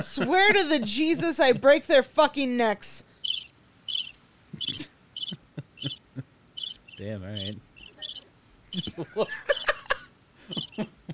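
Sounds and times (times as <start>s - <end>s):
laughter: 0.0s - 1.8s, 4.6s - 6.3s, 8.7s - 11.1s
speech: 0.0s - 3.1s, 7.0s - 7.7s, 8.8s - 9.6s, 10.5s - 11.1s
cricket chirping: 3.2s - 11.1s.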